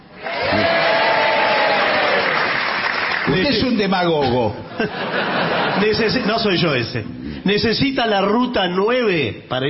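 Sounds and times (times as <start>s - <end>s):
faint murmur of cheering voices: 0.2s - 2.9s
loud dense applause from a large audience: 0.2s - 3.7s
speech: 3.8s - 9.6s
laughter: 4.7s - 6.6s.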